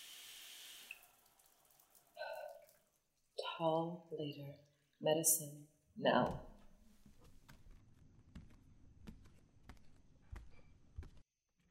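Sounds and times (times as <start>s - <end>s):
shower running: 0.0s - 2.9s
speech: 3.6s - 6.5s.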